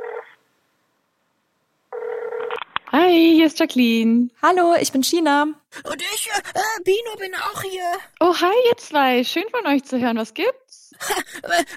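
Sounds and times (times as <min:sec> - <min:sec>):
telephone ringback tone after dialling a call: 0:01.9 - 0:02.5
speech: 0:03.1 - 0:11.7.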